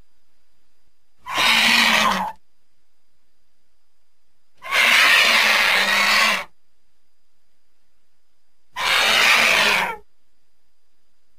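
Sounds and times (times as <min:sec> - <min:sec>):
faint low hum: 0:00.0 - 0:11.3
vulture hissing: 0:01.2 - 0:02.4, 0:04.6 - 0:06.5, 0:08.8 - 0:10.0.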